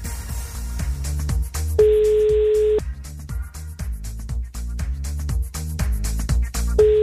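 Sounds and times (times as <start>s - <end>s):
rhythmic music: 0.0s - 7.0s
telephone ringback tone during a call: 1.8s - 2.8s, 6.8s - 7.0s.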